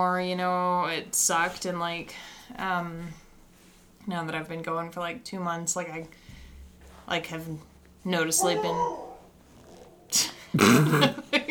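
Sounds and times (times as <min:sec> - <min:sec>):
speech: 0:00.0 - 0:03.2, 0:04.0 - 0:06.2, 0:07.1 - 0:09.0, 0:10.1 - 0:11.3
dog growling softly in its sleep: 0:08.4 - 0:10.4
dog snuffling in its sleep: 0:08.6 - 0:10.2.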